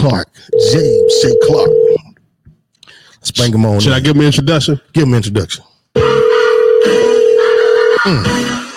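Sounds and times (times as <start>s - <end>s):
speech: 0.0s - 2.0s, 3.2s - 5.7s, 8.0s - 8.5s
telephone call ringing unanswered: 0.5s - 2.0s, 6.0s - 8.0s.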